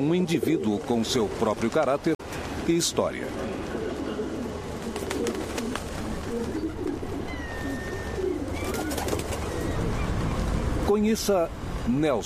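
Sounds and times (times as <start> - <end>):
speech: 0.0 - 3.6, 10.9 - 12.2
steady outdoor hum: 0.0 - 12.2
street pigeons cooing in a city: 3.3 - 10.6.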